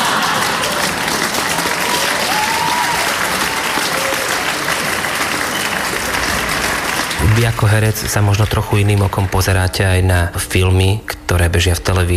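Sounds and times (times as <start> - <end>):
sitcom studio audience laughing: 0.0 - 7.6
sitcom studio audience applauding: 0.0 - 10.0
speech: 7.4 - 12.1.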